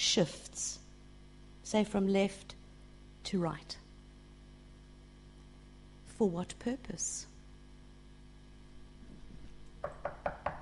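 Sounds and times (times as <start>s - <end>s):
speech: 0.1s - 0.8s, 1.7s - 2.5s, 3.3s - 3.8s, 6.2s - 7.3s
knocking on a door: 9.8s - 10.6s.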